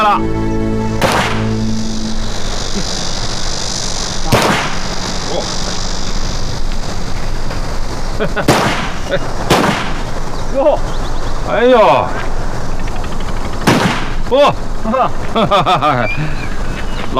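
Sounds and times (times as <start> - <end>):
speech: 0.0 - 0.6, 8.2 - 9.8, 10.5 - 12.4, 14.3 - 16.4
steady noise: 0.0 - 17.1
gunshots during shooting practice: 1.0 - 1.5, 4.1 - 5.3, 8.4 - 10.2, 13.6 - 14.2
laughter: 8.1 - 9.4, 14.8 - 16.8.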